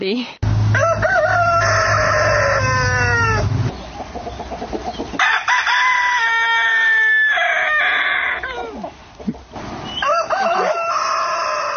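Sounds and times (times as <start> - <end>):
speech: 0.0 - 0.9
roosters crowing loudly in overlapping bursts: 0.4 - 9.0, 9.8 - 11.7.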